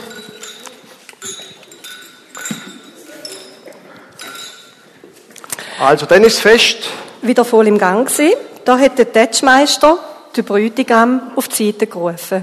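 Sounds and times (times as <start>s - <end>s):
glasses clinking in a toast: 0.0s - 5.4s
busy murmur of voices and festive chatter: 0.0s - 7.3s
speech: 5.8s - 12.4s.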